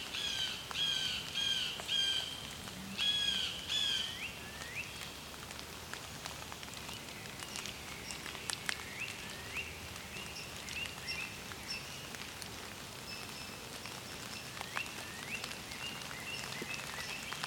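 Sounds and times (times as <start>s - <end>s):
faint dripping or light rain: 0.0s - 17.4s
blue jay calling in harsh buzzy notes: 0.1s - 2.4s, 3.0s - 5.0s.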